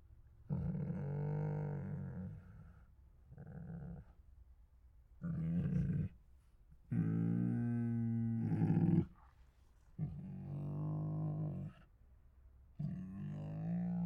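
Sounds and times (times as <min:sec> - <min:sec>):
hungry tiger giving deep rasping moans: 0:00.5 - 0:04.1, 0:06.9 - 0:09.2, 0:10.0 - 0:11.9, 0:12.8 - 0:14.0.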